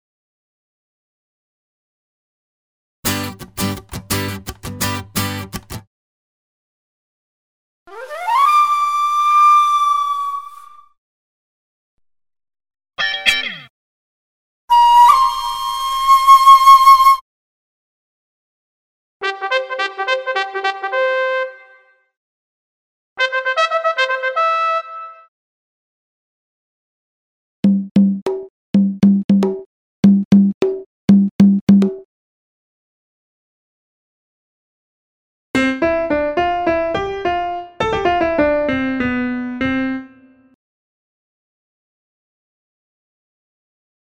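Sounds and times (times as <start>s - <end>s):
guitar: 3.0s - 5.8s, 35.6s - 39.9s
flute: 7.9s - 11.0s, 14.7s - 17.2s
trumpet: 19.2s - 21.9s, 23.2s - 25.3s
small drum: 27.7s - 32.0s
piano: 35.6s - 40.5s.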